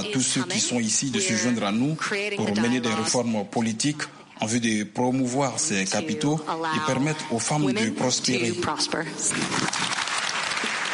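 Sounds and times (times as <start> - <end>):
speech: 0.0 - 10.0
applause from women attending a summit: 9.3 - 10.9.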